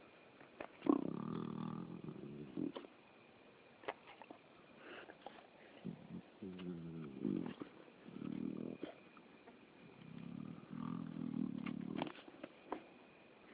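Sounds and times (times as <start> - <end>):
spotted hyena Crocuta crocuta giving deep rasping grunts: 0.8 - 2.8, 5.8 - 9.0, 10.0 - 12.2.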